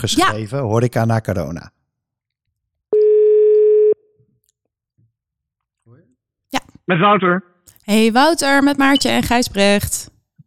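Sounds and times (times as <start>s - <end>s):
speech: 0.0s - 1.8s, 6.9s - 10.1s
telephone ringback tone while a call is being placed: 3.0s - 4.0s.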